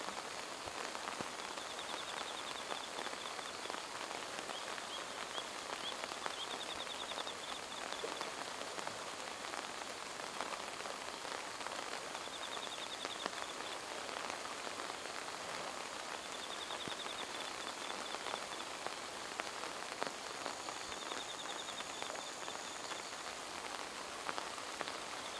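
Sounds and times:
steady rain pattering on a riverbed in the dark: 0.0s - 25.3s
faint high chirping birds: 0.4s - 25.3s.

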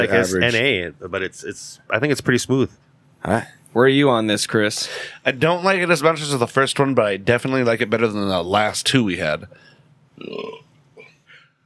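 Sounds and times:
speech: 0.0s - 10.6s
loud burp after drinking beer: 10.2s - 11.2s.

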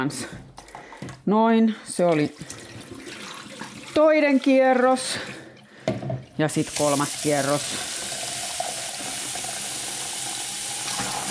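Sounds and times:
speech: 0.0s - 0.4s, 1.0s - 2.6s, 4.0s - 5.4s, 6.4s - 7.9s
water running from a kitchen tap into a sink: 2.2s - 5.5s, 6.4s - 11.2s.

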